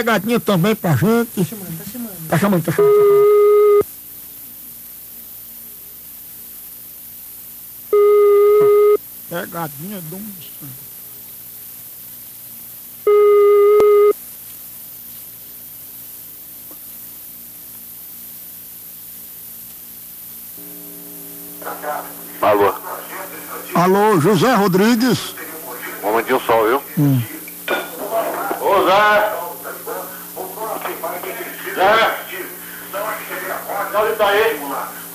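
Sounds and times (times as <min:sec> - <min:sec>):
speech: 0:00.0 - 0:03.5, 0:09.3 - 0:10.9, 0:23.6 - 0:25.4, 0:26.1 - 0:27.4, 0:28.8 - 0:29.4, 0:31.8 - 0:32.3, 0:33.9 - 0:35.1
telephone ringing tones on an outgoing call: 0:02.7 - 0:03.8, 0:08.0 - 0:09.0, 0:13.1 - 0:14.2, 0:20.6 - 0:27.3
low tone: 0:20.6 - 0:22.4.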